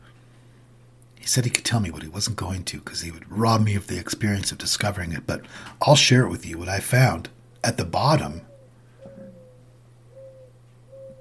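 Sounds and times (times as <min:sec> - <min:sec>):
speech: 0:01.3 - 0:08.5
doves cooing in a yard: 0:08.0 - 0:11.1.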